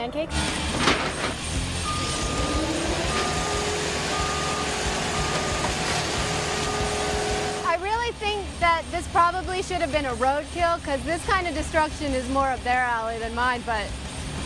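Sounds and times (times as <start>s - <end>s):
speech: 0.1s - 1.7s, 8.8s - 14.0s
car crusher flattening a Volvo onto a Chevy Astro van: 0.3s - 14.4s
sustained hydraulic whine: 0.3s - 14.4s
brief warbling squeal: 1.8s - 7.7s.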